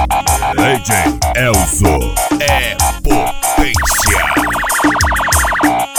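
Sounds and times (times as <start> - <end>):
punchy funk beat with heavy bass kicks and rhythmic stabs: 0.2 - 5.7
speech: 0.7 - 2.7
fast warbling siren sound effect: 3.4 - 5.9.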